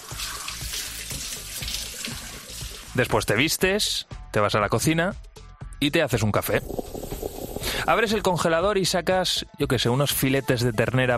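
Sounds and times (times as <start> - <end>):
shower water running: 0.0 - 3.4, 6.6 - 8.2
speech: 3.0 - 6.9, 7.9 - 11.1.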